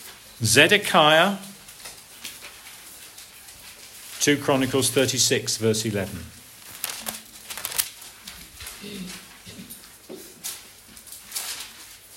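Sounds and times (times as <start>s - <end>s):
speech: 0.4s - 1.5s, 4.2s - 6.4s
book pages rustling as they are turned: 1.6s - 8.8s, 10.4s - 12.1s.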